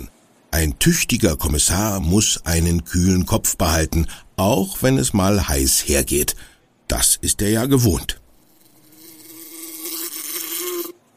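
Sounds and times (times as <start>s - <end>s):
speech: 0.8s - 8.2s
housefly buzzing: 8.4s - 11.0s.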